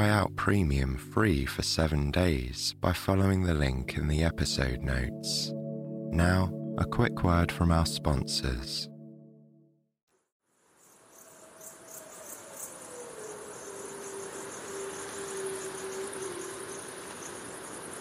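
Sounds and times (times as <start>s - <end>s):
speech: 0.0s - 8.9s
crickets pulsing: 10.5s - 17.9s
wolf howling at night on the prairie: 11.8s - 16.9s.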